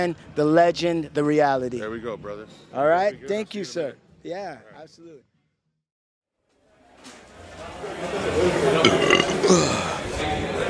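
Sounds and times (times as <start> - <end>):
speech: 0.0 - 5.3, 7.0 - 9.9
long gravelly burp: 8.8 - 10.0.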